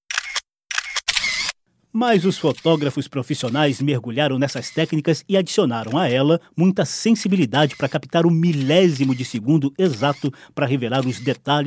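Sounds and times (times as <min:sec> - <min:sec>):
camera shutter clicks: 0:00.1 - 0:01.6, 0:02.4 - 0:03.6, 0:04.6 - 0:05.0, 0:07.7 - 0:10.3, 0:11.0 - 0:11.5
speech: 0:01.9 - 0:11.6.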